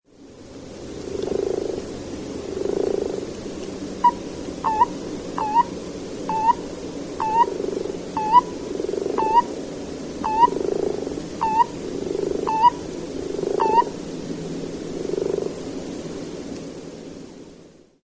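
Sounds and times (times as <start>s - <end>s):
frog croaking: 1.0s - 3.3s, 3.9s - 14.0s, 14.9s - 15.6s.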